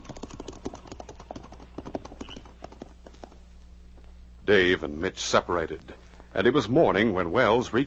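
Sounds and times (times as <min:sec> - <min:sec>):
horse hooves clip-clopping as riders move off: 0:00.0 - 0:04.2
speech: 0:04.5 - 0:07.8.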